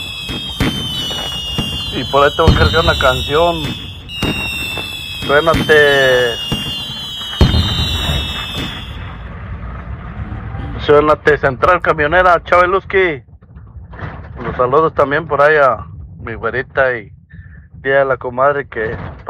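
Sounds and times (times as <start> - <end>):
high whistling tone overhead: 0.0 - 9.3
fireworks rockets exploding: 0.0 - 9.7
speech: 2.0 - 4.5, 5.2 - 6.5, 10.9 - 13.2, 14.6 - 17.1, 17.8 - 19.2.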